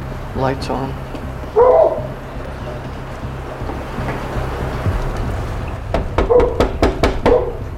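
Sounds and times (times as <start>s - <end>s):
steady low rumble: 0.0s - 7.7s
speech: 0.4s - 1.7s
dog barking: 1.6s - 2.1s, 6.2s - 7.6s.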